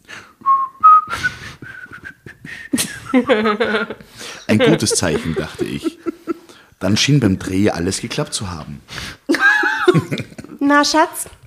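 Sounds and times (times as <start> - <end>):
person whistling a short lilting little tune: 0.4 - 3.2
laughter: 2.8 - 6.6, 9.3 - 10.6
speech: 3.1 - 5.9, 6.8 - 9.2, 9.9 - 11.4.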